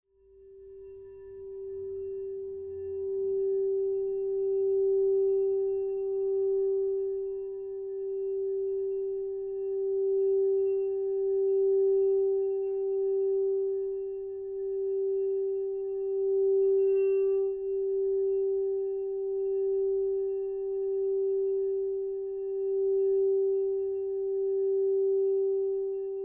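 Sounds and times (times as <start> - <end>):
singing bowl tone in G: 0.2 - 26.2.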